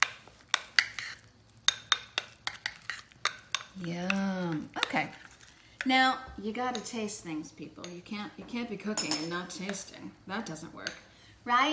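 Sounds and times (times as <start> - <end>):
utensil clinking against a bowl while mixing cumin, oregano, basil and paprika: 0.0 - 5.9, 6.7 - 7.1, 8.9 - 9.9
speech: 3.8 - 5.1, 5.8 - 11.7.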